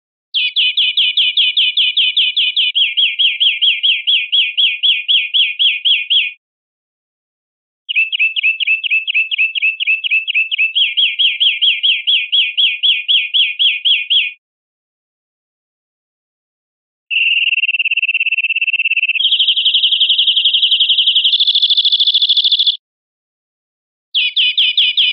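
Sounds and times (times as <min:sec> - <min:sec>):
greenfinch linked calls: 0:00.4 - 0:06.4, 0:07.9 - 0:14.4, 0:17.1 - 0:22.8, 0:24.2 - 0:25.1.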